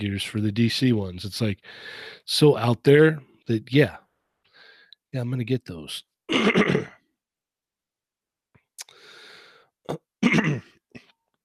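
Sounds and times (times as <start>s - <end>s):
speech: 0.0s - 4.0s, 5.1s - 7.0s
person coughing on their own phlegm: 6.3s - 7.0s, 9.9s - 10.8s
wet throat-clearing: 6.3s - 7.0s, 9.9s - 10.8s
raspy breathy exhale: 8.8s - 9.7s.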